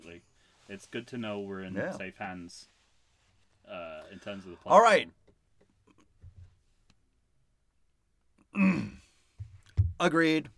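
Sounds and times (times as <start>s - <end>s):
speech: 0.7s - 2.8s, 3.7s - 5.2s, 10.0s - 10.5s
throat-clearing cough into a microphone: 8.6s - 9.0s.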